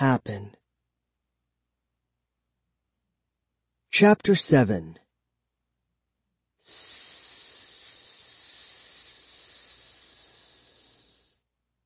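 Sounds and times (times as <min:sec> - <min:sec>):
speech: 0:00.0 - 0:00.6, 0:04.0 - 0:05.0
mist hissing from opened bottle: 0:06.6 - 0:11.4.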